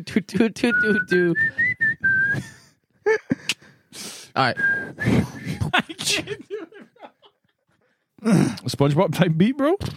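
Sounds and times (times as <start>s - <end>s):
speech: 0.0s - 1.7s, 2.3s - 6.5s, 8.2s - 9.9s
person whistling a tune: 0.7s - 2.7s, 4.4s - 5.4s
laughter: 5.2s - 7.8s
breathy vocal sounds: 8.2s - 8.7s.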